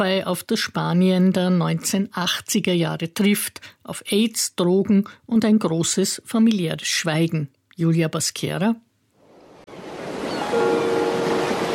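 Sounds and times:
speech: 0.0 - 8.9
ocean waves roaring: 9.2 - 11.7.

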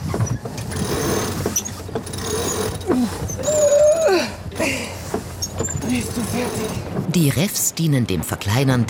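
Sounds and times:
sailboat winches cranked by crew, ratcheting and squeaking: 0.0 - 4.0, 5.1 - 7.0
speech: 2.9 - 3.4, 6.3 - 8.8.

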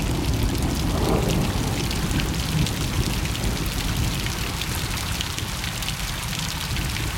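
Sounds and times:
rain tapping against a window heard from indoors: 0.0 - 7.1.

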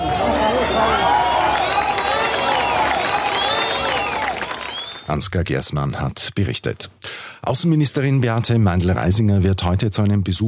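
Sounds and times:
crowd cheering and shouting among rubble at a rescue: 0.0 - 5.0
whistles: 0.3 - 5.1
speech: 5.1 - 10.4.

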